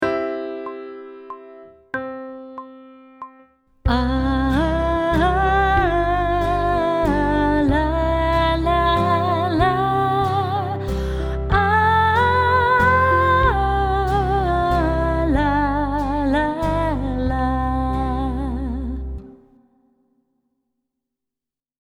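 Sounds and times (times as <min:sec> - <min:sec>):
person singing pop vocals for sight singing: 0:03.9 - 0:19.4.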